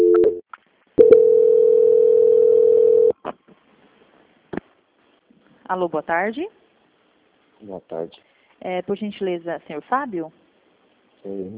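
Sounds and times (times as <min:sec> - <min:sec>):
telephone line tones during a call transfer: 0:00.0 - 0:00.4, 0:01.0 - 0:03.1
speech: 0:05.7 - 0:06.6, 0:07.6 - 0:10.4, 0:11.2 - 0:11.5.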